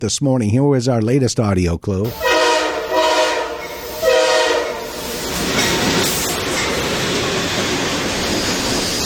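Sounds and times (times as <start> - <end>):
speech: 0.0 - 2.4
train horn blasts: 2.1 - 5.2
rumble and broadband roar of a passing train: 2.1 - 9.0.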